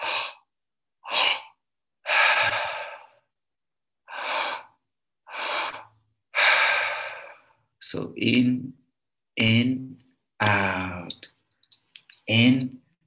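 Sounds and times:
person breathing through the mouth in a breathing exercise: 0:00.0 - 0:03.3, 0:04.1 - 0:07.6
speech: 0:07.9 - 0:08.8, 0:09.4 - 0:11.2, 0:12.3 - 0:12.8.

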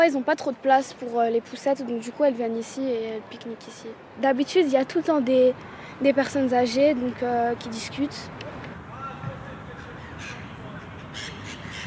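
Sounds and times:
speech: 0:00.0 - 0:08.5
birds giving short harsh caws outdoors: 0:09.0 - 0:11.8.

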